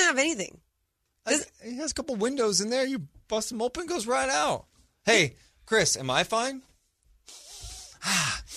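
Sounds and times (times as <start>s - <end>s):
speech: 0.1s - 0.6s, 1.2s - 6.7s, 8.0s - 8.5s
deep breath through the nose: 7.3s - 8.5s.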